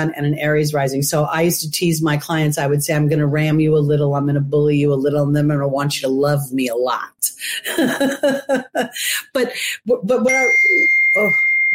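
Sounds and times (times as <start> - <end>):
speech: 0.0 - 11.7
phone notification ding: 10.3 - 11.7.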